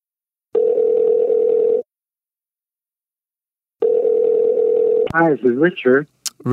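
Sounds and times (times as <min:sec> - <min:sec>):
telephone line tone: 0:00.6 - 0:01.9, 0:03.8 - 0:05.1
speech: 0:05.2 - 0:06.5.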